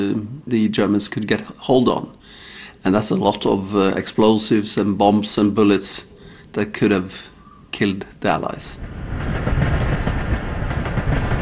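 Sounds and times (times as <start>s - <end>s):
speech: 0.0s - 9.4s
electric train hauling sulfur on rails: 8.4s - 11.4s.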